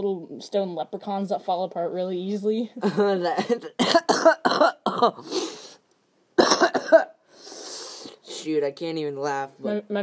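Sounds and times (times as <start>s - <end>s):
speech: 0.0s - 5.6s, 8.4s - 10.0s
coughing fit: 3.6s - 5.6s, 6.4s - 7.2s
raspy breath: 7.2s - 8.2s.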